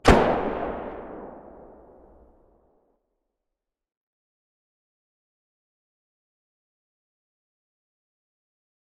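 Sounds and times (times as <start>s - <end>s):
distant weapon muzzle blasts: 0.0s - 2.2s.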